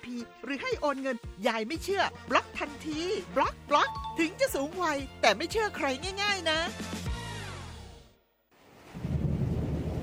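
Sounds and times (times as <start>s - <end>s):
speech: 0.0s - 6.9s
heavy storm rain: 8.5s - 10.0s
deep rumble of thunder: 8.9s - 10.0s.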